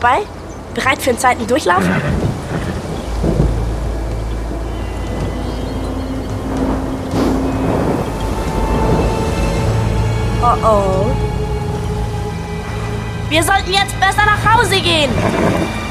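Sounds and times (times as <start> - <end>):
speech: 0.0 - 2.3, 10.5 - 11.3, 13.3 - 15.8
steady heavy rain in a thunderstorm: 0.0 - 15.8
deep rolling thunder: 1.8 - 15.8.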